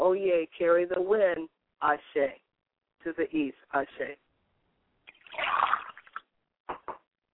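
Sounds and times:
speech: 0.4s - 2.4s, 3.0s - 4.3s
liquid poured out as a libation: 5.1s - 6.3s.

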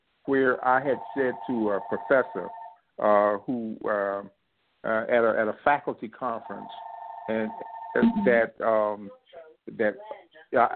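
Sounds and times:
speech: 0.2s - 10.7s
telephone ringing: 1.2s - 2.8s, 6.5s - 8.4s.

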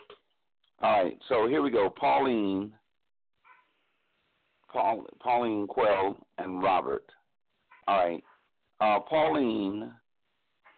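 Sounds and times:
speech: 0.8s - 2.8s, 4.7s - 7.2s, 7.9s - 10.0s
dog barking in the background: 3.4s - 3.8s, 7.7s - 8.5s.

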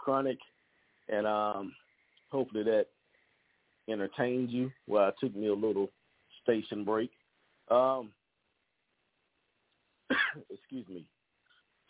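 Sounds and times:
speech: 0.0s - 3.0s, 3.9s - 8.2s, 10.1s - 11.2s
person coughing: 10.1s - 10.6s.

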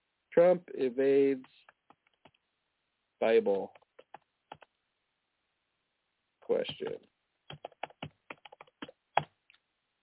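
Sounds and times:
speech: 0.4s - 1.7s, 3.2s - 3.8s, 6.5s - 7.7s
loud typing on a computer keyboard: 3.5s - 4.7s, 7.5s - 9.3s.

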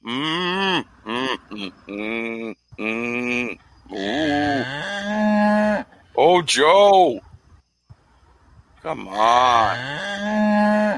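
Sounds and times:
man imitating a cow's moo: 0.0s - 5.9s, 9.0s - 10.9s
speech: 6.4s - 7.2s, 8.9s - 10.7s.

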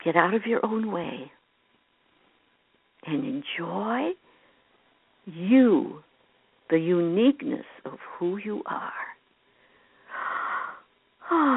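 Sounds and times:
speech: 0.0s - 1.4s, 3.1s - 4.2s, 5.3s - 6.1s, 6.7s - 9.1s, 11.3s - 11.5s
slow breathing with a slightly wheezy airy tone: 9.5s - 11.5s.

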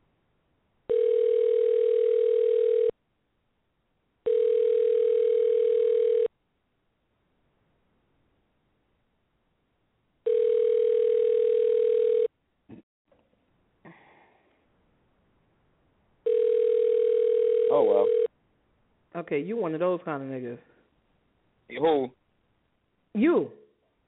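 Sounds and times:
outgoing phone call ringback tones: 0.9s - 2.9s, 4.2s - 6.3s, 10.3s - 12.3s, 16.2s - 18.3s
speech: 19.3s - 20.7s, 21.7s - 22.2s, 23.2s - 23.6s.

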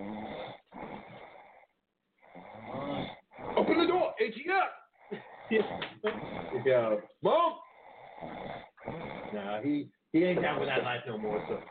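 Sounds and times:
person snoring: 0.0s - 3.9s, 5.0s - 9.9s, 11.1s - 11.6s
speech: 4.2s - 7.6s, 9.3s - 11.6s.

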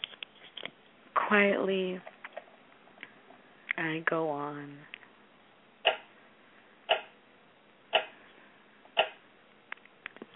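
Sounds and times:
speech: 1.3s - 2.1s, 3.8s - 4.9s
clock ticking: 5.8s - 6.1s, 6.9s - 7.1s, 7.9s - 8.2s, 9.0s - 9.2s.

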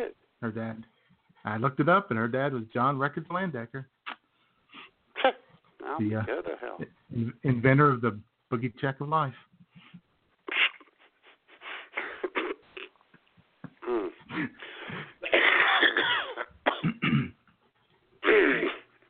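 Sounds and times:
speech: 0.0s - 4.0s, 5.2s - 9.5s
person clearing throat: 15.2s - 17.4s, 18.2s - 19.0s
person coughing: 15.2s - 17.4s, 18.2s - 19.0s.

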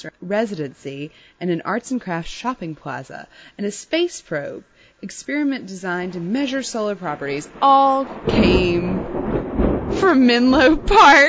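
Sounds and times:
speech: 0.0s - 9.4s, 10.0s - 11.2s
thunder rumbling: 5.6s - 11.2s.

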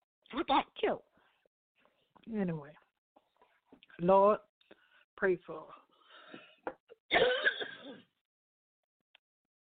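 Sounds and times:
speech: 0.4s - 1.1s, 2.2s - 2.8s, 4.0s - 4.5s, 5.2s - 8.0s
person clearing throat: 7.1s - 8.1s
person coughing: 7.1s - 8.1s.

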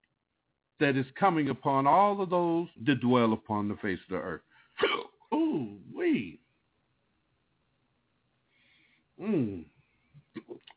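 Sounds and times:
speech: 0.8s - 5.0s
loud voiced hiccups: 4.8s - 5.8s, 9.2s - 9.7s.

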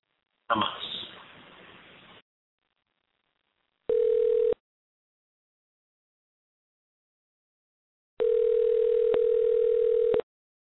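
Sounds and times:
speech: 0.5s - 0.8s
telephone ringback tone from an unanswered call: 3.9s - 4.6s, 8.2s - 10.2s.

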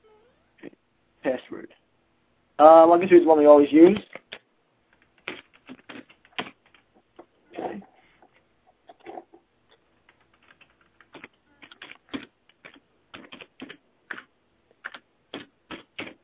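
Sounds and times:
speech: 1.2s - 1.8s, 2.6s - 4.1s
typing on a computer keyboard while creating an email account: 4.1s - 6.8s, 10.0s - 16.2s.

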